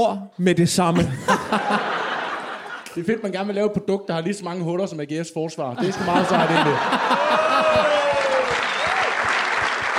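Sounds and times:
speech: 0:00.0 - 0:02.0, 0:03.0 - 0:08.0
laughter: 0:01.0 - 0:03.2, 0:05.8 - 0:09.9
audience applause: 0:06.0 - 0:09.9.

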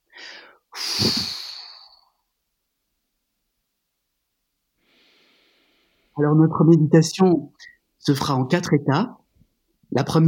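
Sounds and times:
breath blown out through a half-open mouth: 0:00.2 - 0:02.2
speech: 0:01.0 - 0:01.3, 0:06.2 - 0:09.2, 0:09.9 - 0:10.2.

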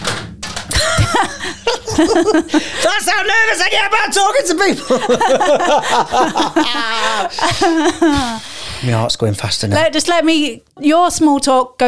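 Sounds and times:
keyboard knocked off a desk: 0:00.0 - 0:01.3
laughter: 0:00.7 - 0:03.1, 0:04.4 - 0:08.4
speech: 0:02.0 - 0:11.8.

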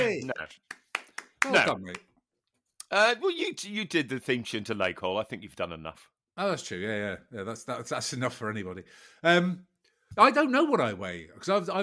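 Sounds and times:
speech: 0:00.1 - 0:00.8, 0:01.4 - 0:02.1, 0:02.9 - 0:11.8
sharp hand claps: 0:00.6 - 0:02.1.

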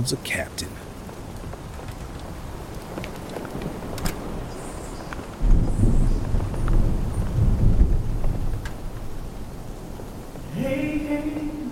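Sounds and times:
speech: 0:00.0 - 0:00.9
steady rain: 0:00.0 - 0:11.7
deep rolling thunder: 0:02.3 - 0:10.6.

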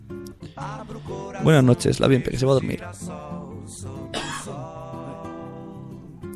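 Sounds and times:
tonal music: 0:00.0 - 0:06.3
speech: 0:00.6 - 0:03.3
person coughing: 0:04.1 - 0:04.5.

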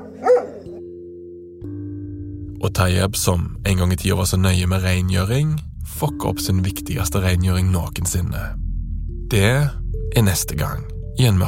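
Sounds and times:
dog barking: 0:00.0 - 0:00.8
speech: 0:02.6 - 0:08.6, 0:09.3 - 0:11.4.

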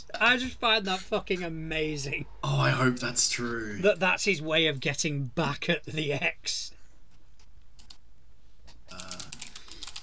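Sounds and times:
speech: 0:00.1 - 0:06.8
rapid typing on a computer keyboard: 0:07.8 - 0:08.0, 0:08.9 - 0:10.0.

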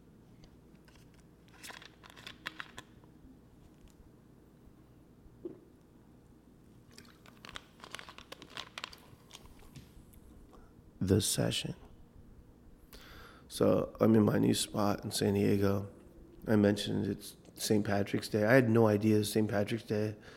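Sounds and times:
person sipping a diet soda: 0:06.8 - 0:08.3
speech: 0:11.1 - 0:11.8, 0:13.6 - 0:20.3.

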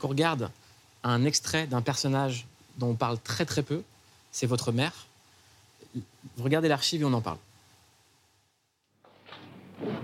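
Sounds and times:
speech: 0:00.0 - 0:05.1, 0:05.9 - 0:07.5
drawer sliding open with a rough scraping rustle: 0:09.0 - 0:10.0.

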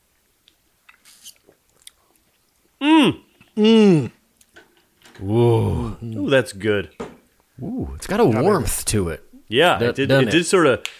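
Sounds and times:
person sipping a frothy margarita: 0:00.9 - 0:04.2
speech: 0:03.0 - 0:04.1, 0:06.3 - 0:07.0, 0:07.6 - 0:10.9.

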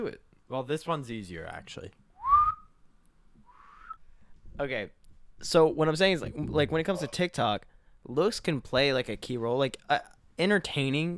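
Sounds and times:
speech: 0:00.0 - 0:02.0, 0:04.6 - 0:11.1
person whistling: 0:02.2 - 0:02.8, 0:03.4 - 0:04.0.

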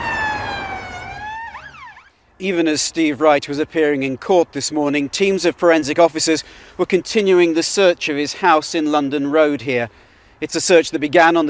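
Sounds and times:
police siren wailing and yelping: 0:00.0 - 0:02.1
speech: 0:02.4 - 0:11.4.

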